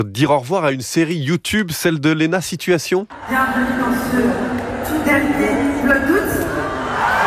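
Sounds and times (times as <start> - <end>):
speech: 0.0 - 6.5
concert crowd cheering and screaming in the Accor Arena: 3.1 - 7.2.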